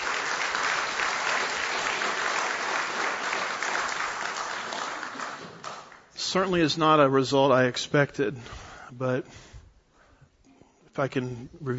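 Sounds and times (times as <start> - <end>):
crowd applauding: 0.0 - 6.2
speech: 6.3 - 9.5, 11.0 - 11.7.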